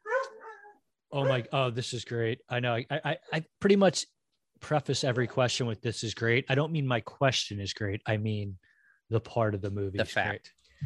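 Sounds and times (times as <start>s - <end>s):
dog barking: 0.0s - 1.5s
speech: 1.1s - 10.8s.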